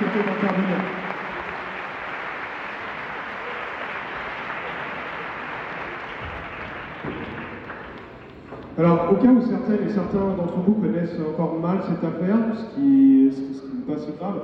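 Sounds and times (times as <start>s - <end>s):
audience applause from many hands: 0.0s - 8.9s
speech: 0.2s - 1.1s, 8.8s - 14.4s.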